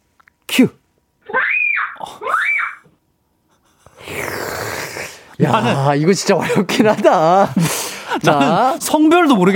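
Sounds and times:
speech: 0:00.6 - 0:01.4, 0:05.4 - 0:09.5
person screaming: 0:01.2 - 0:02.9.

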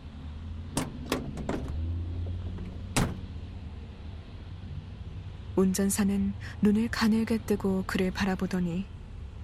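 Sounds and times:
steady low truck engine rumble: 0:00.0 - 0:05.7
truck door shutting with solid thump: 0:00.7 - 0:01.8, 0:02.5 - 0:03.3
truck door unlatching and opening: 0:00.7 - 0:03.4
speech: 0:05.6 - 0:08.9.

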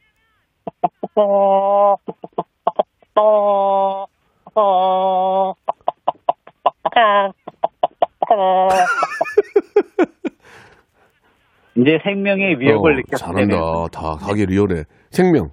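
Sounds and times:
voice imitating a calm hen clucking: 0:00.6 - 0:08.9
speech: 0:00.8 - 0:02.2, 0:03.2 - 0:03.8, 0:11.8 - 0:15.5
laughter: 0:08.7 - 0:10.8, 0:12.7 - 0:13.6.

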